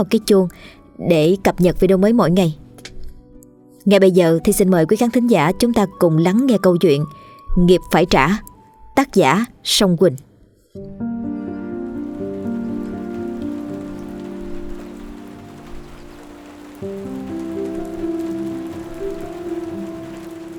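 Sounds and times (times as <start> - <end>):
speech: 0.0 - 2.6, 3.8 - 11.0
steady drizzling rain: 11.6 - 20.5.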